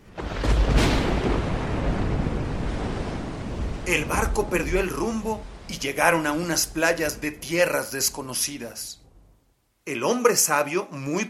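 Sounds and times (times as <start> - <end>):
crashing waves in a storm at sea: 0.0 - 8.9
wind roaring in a storm at sea: 0.0 - 9.4
speech: 3.9 - 9.0, 9.8 - 11.2.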